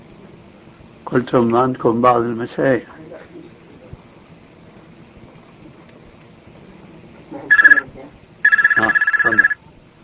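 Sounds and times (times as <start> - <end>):
speech: 1.1 - 3.0
telephone ringing: 7.5 - 7.8, 8.5 - 9.6.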